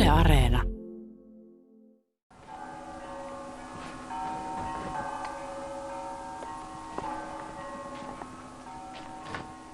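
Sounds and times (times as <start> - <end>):
speech: 0.1 - 0.7
bells pealing: 2.5 - 9.7.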